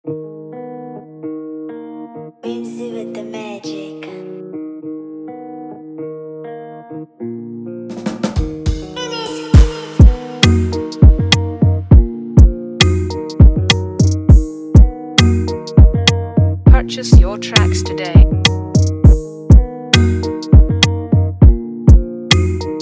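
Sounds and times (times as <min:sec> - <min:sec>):
Afrobeat instrumental music: 0:07.9 - 0:22.7.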